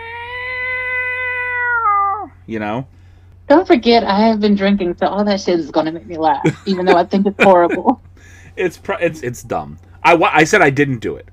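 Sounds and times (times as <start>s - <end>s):
person imitating a yowling cat: 0.0s - 2.4s
speech: 2.5s - 11.3s
laughter: 6.2s - 8.0s, 8.6s - 10.5s.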